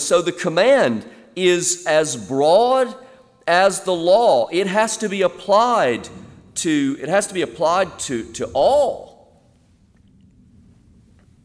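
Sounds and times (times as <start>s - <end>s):
speech: 0.1s - 9.1s
distant thunder rumble: 3.9s - 11.4s.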